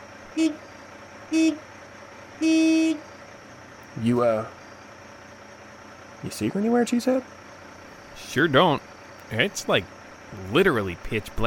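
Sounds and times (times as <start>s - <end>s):
car horn honking at night on an abandoned old road: 0.3s - 1.7s, 2.4s - 3.1s
speech: 0.4s - 0.7s, 1.3s - 1.7s, 2.4s - 3.1s, 4.0s - 4.6s, 6.2s - 7.4s, 8.2s - 11.4s.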